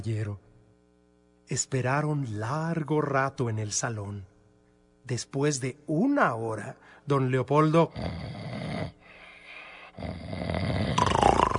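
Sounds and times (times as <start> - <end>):
speech: 0.0 - 0.5, 1.5 - 4.3, 5.0 - 8.5, 10.0 - 11.1
man snoring with loud rough rattling breaths: 7.8 - 11.5.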